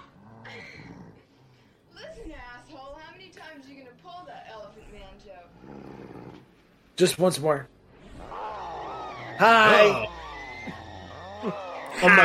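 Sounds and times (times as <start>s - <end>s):
dog growling and whining: 0.0s - 1.4s, 5.6s - 6.5s
speech: 7.0s - 7.8s, 9.4s - 10.8s, 11.4s - 12.2s.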